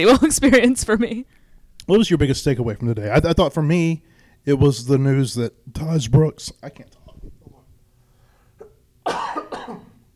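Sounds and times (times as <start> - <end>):
speech: 0.0 - 7.0
person coughing: 8.6 - 10.0.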